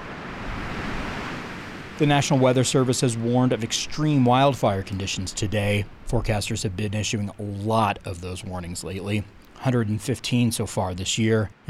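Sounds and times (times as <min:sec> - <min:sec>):
strong wind blowing outdoors: 0:00.0 - 0:08.6
speech: 0:02.0 - 0:11.6.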